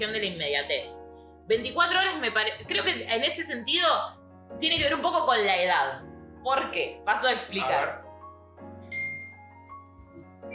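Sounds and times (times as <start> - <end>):
speech: 0.0 - 8.0
iPhone incoming message notification tone: 8.9 - 9.5.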